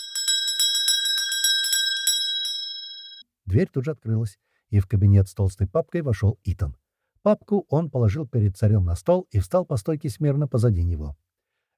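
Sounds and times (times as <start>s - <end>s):
small hand bell taken from a desk ringing: 0.0s - 3.2s
speech: 3.5s - 11.3s.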